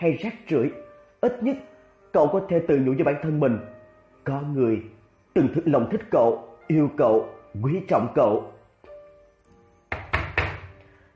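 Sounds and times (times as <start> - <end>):
speech: 0.0 - 8.6
heavy knocks on a room door: 9.9 - 10.8.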